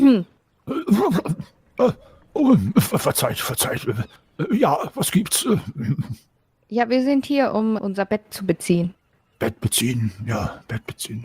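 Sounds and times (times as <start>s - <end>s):
speech: 0.1s - 11.2s
person clearing throat: 0.7s - 3.0s.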